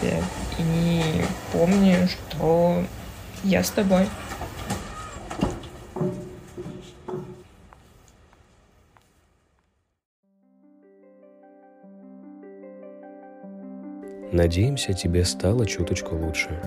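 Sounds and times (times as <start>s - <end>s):
tram rumbling and clanking to a halt at a stop: 0.0s - 7.9s
speech: 1.6s - 4.3s, 14.4s - 16.6s
gentle melodic music: 10.2s - 16.6s.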